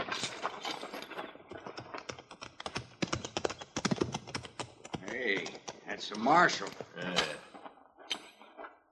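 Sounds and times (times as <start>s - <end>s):
horse hooves clip-clopping on hard ground: 0.1s - 7.0s
speech: 6.0s - 7.5s.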